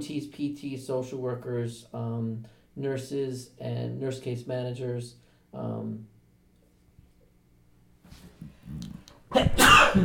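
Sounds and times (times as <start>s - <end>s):
speech: 0.0s - 6.1s
person sneezing: 8.2s - 10.0s.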